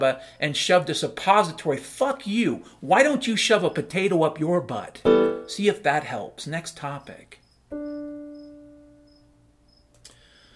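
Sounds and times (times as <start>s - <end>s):
speech: 0.0s - 7.9s
crickets chirping: 7.0s - 9.9s.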